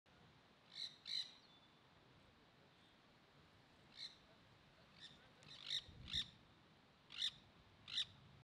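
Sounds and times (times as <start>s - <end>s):
green-cheeked parakeet calling: 0.7s - 1.5s, 5.0s - 6.3s, 7.1s - 8.2s.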